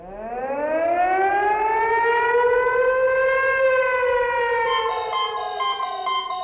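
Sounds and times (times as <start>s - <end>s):
civil defense siren wailing during a test alarm: 0.1s - 6.4s
rapid pulsing beeps: 4.7s - 6.4s.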